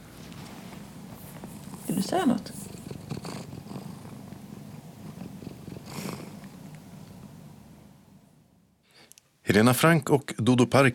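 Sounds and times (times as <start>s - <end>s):
cat purring: 1.0s - 7.4s
speech: 1.9s - 2.6s, 9.6s - 10.9s.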